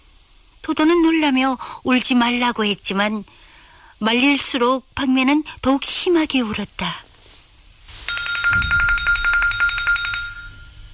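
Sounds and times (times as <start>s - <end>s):
speech: 0.7s - 7.0s
telephone bell ringing loudly: 8.1s - 10.9s.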